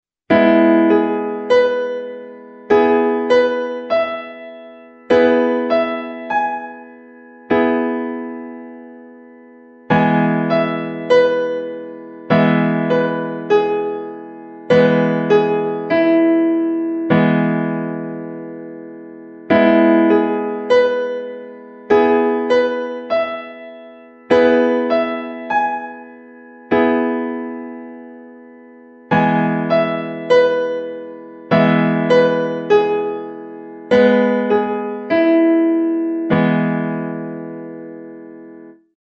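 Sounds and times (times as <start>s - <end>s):
electric piano keyboard chord: 0.3s - 38.8s.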